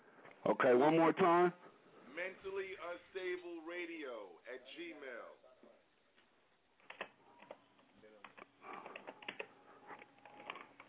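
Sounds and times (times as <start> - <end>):
faint hum: 0.0 - 10.8
speech: 0.4 - 1.6, 2.2 - 5.4
fingers typing an email address on a computer keyboard: 8.2 - 10.8.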